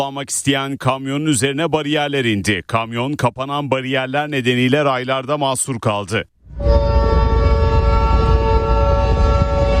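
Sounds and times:
speech: 0.0s - 6.8s
horn-like tones: 6.4s - 9.7s
train approaching a level crossing: 6.5s - 9.7s.

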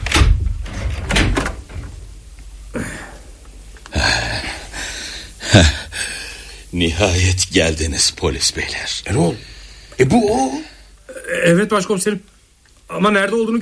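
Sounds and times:
door clunks and rattles: 0.0s - 2.0s
speech: 5.6s - 5.8s, 6.7s - 10.7s, 11.3s - 12.3s, 12.9s - 13.5s.

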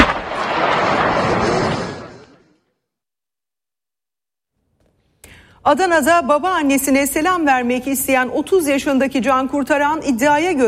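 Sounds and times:
gunfire from a long-barreled weapon: 0.0s - 2.3s
speech: 5.6s - 10.6s.

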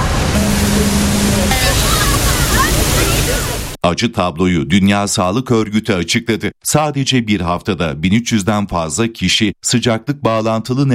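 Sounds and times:
fire engines spraying water on tourists during a heat wave in Czechia: 0.1s - 3.8s
speech: 3.8s - 10.9s.

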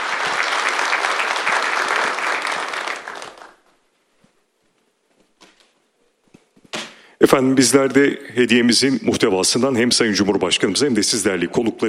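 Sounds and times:
audience applause of many hands clapping: 0.0s - 3.7s
speech: 7.2s - 11.8s.

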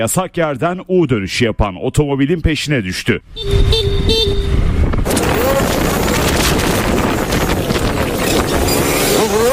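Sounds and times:
speech: 0.0s - 4.4s, 5.0s - 6.1s, 9.2s - 9.5s
road and wind noise from passing traffic: 0.0s - 9.5s
car horn honking in traffic: 3.3s - 4.7s.

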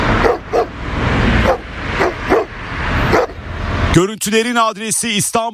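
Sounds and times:
stray dogs barking while chasing a man in a parking lot: 0.2s - 0.8s, 1.3s - 3.5s
speech: 3.9s - 5.5s.

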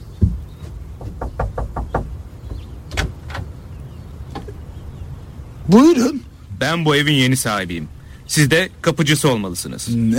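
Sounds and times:
low rumble: 0.0s - 10.1s
sharp knocks on a door: 0.2s - 3.4s
speech: 5.7s - 10.1s.

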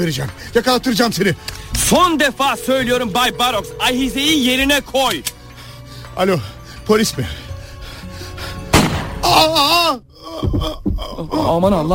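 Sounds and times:
speech: 0.0s - 5.4s, 6.2s - 7.4s, 9.4s - 11.9s
single gunshot: 8.8s - 9.1s.

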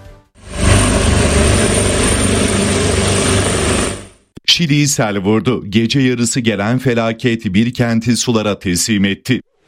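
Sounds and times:
helicopter flying over a flooded city during a rescue: 0.4s - 4.3s
speech: 4.5s - 9.5s.

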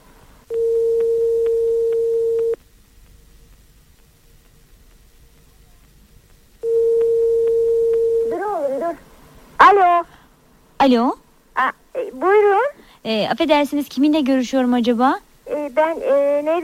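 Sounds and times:
faint hiss: 0.0s - 16.6s
telephone ringback tone while calling: 0.5s - 2.6s, 6.6s - 8.4s
speech: 10.8s - 16.6s.

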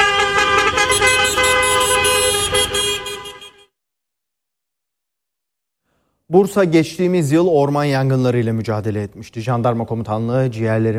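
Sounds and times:
taxis honking car horns in a convoy: 0.0s - 3.7s
speech: 6.3s - 10.9s.

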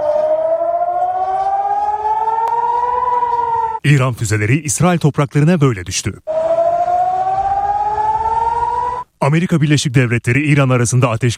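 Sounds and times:
air raid siren wailing in Haifa during an incoming missile attack: 0.0s - 3.8s, 6.3s - 9.2s
speech: 3.8s - 6.5s, 9.3s - 11.3s.

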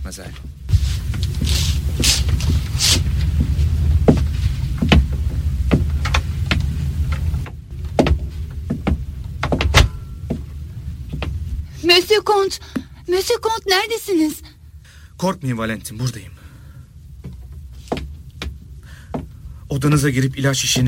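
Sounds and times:
low rumbling background: 0.0s - 20.8s
speech: 0.1s - 0.6s, 12.0s - 14.5s, 15.2s - 16.3s, 19.8s - 20.8s
approaching footsteps at walking pace: 0.2s - 11.8s, 17.2s - 19.4s.

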